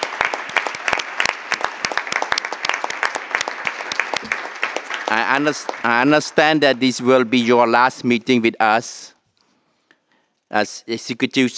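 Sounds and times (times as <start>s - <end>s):
audience applause: 0.0s - 7.5s
speech: 5.1s - 9.1s, 10.5s - 11.5s.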